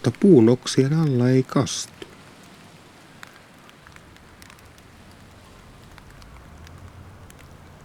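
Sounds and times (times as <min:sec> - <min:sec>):
gentle wind: 0:00.0 - 0:07.8
steady light rain pattering outdoors: 0:00.0 - 0:07.8
speech: 0:00.1 - 0:02.1.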